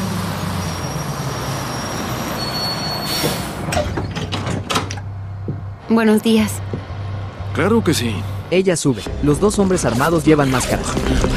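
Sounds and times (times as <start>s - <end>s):
bus rumbling as it pulls up: 0.0s - 11.3s
pneumatic hiss of bus automatic doors opening: 2.8s - 3.8s
mechanical clunks of bus automatic doors opening: 3.0s - 5.8s
speech: 5.9s - 6.7s, 7.6s - 11.3s.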